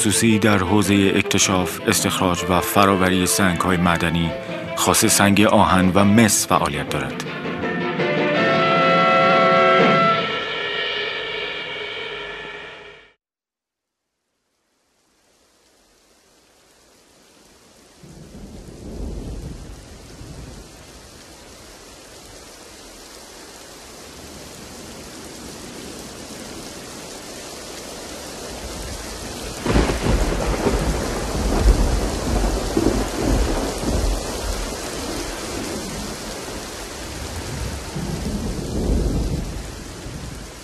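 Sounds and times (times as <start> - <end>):
speech: 0.0 - 7.5
steady spring rain: 0.0 - 9.5, 13.9 - 40.6
deep roll of thunder: 8.4 - 10.4, 18.0 - 22.7, 23.5 - 40.6.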